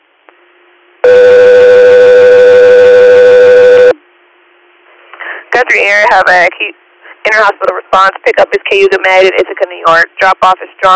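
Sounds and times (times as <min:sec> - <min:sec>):
faint hiss: 0:00.0 - 0:10.9
loud steady buzzy dispatch alert tone: 0:01.0 - 0:04.0
speech: 0:05.7 - 0:10.9.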